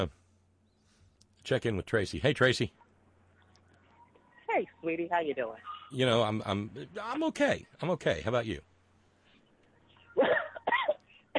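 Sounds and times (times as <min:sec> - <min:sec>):
speech: 0:01.5 - 0:02.8, 0:04.6 - 0:08.7
harsh throaty coughs from a person with a lingering cough: 0:10.2 - 0:11.3.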